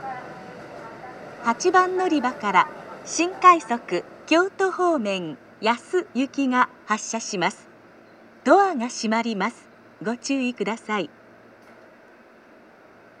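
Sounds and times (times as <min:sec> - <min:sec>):
JR West special rapid service train at Amagasaki station: 0:00.0 - 0:13.1.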